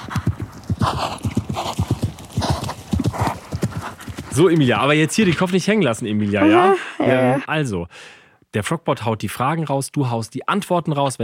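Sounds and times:
horse hooves galloping: 0.0 - 5.7
speech: 4.4 - 11.2.

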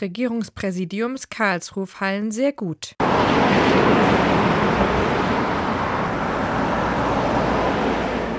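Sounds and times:
speech: 0.0 - 5.1
cars rushing past on a bridge: 3.0 - 8.3.

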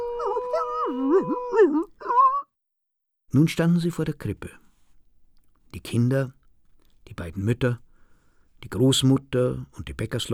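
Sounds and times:
shepherd's dogs and dachshund howling: 0.0 - 2.4
speech: 1.2 - 1.9, 3.3 - 4.6, 5.7 - 6.4, 7.1 - 7.8, 8.6 - 10.3.

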